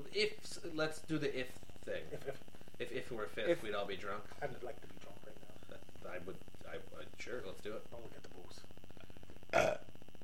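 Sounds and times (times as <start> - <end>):
faint steady hum: 0.0 - 10.2
speech: 0.2 - 8.8, 9.5 - 9.8
belch: 9.5 - 9.9.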